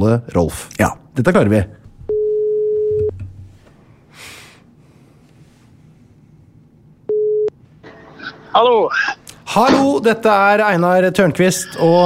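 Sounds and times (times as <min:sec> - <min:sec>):
speech: 0:00.0 - 0:01.8, 0:08.6 - 0:12.0
telephone ringback tone while placing a call: 0:02.1 - 0:03.0, 0:07.1 - 0:07.5.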